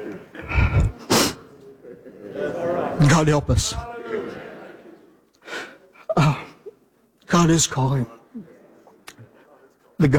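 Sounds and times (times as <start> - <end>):
laughter: 0.0 - 5.3
sharp sneeze with quick inhaling build-up: 0.4 - 1.5
speech: 3.0 - 3.9, 7.4 - 8.2.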